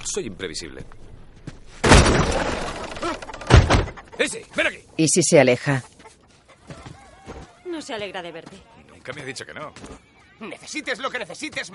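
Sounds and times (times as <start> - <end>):
speech: 0.1 - 1.1, 4.2 - 6.0, 7.8 - 11.7
gunshot blasting a door lock open: 1.8 - 2.7.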